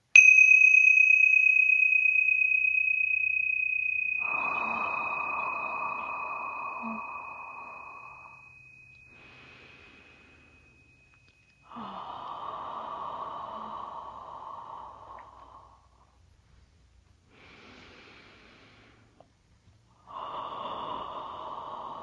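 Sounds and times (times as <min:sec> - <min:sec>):
small tincture bells ringing: 0:00.0 - 0:11.9
soft breathy hiss: 0:04.0 - 0:22.0.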